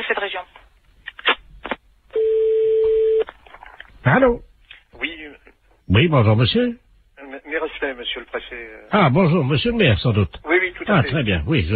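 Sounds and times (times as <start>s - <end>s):
telephone ringing tone: 2.2s - 3.2s
speech: 4.1s - 4.5s, 5.9s - 6.8s, 7.8s - 11.7s.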